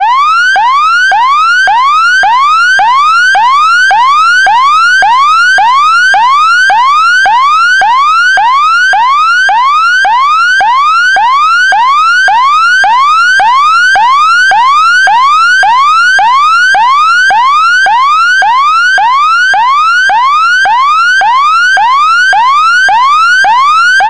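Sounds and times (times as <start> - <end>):
police yelp siren: 0.0 - 24.0.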